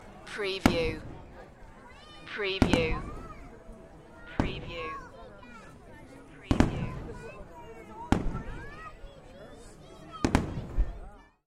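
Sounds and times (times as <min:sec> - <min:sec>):
crowd: 0:00.0 - 0:11.4
fireworks: 0:00.6 - 0:01.5, 0:02.5 - 0:03.4, 0:04.3 - 0:05.0, 0:06.4 - 0:07.4, 0:08.0 - 0:08.8, 0:10.1 - 0:11.2.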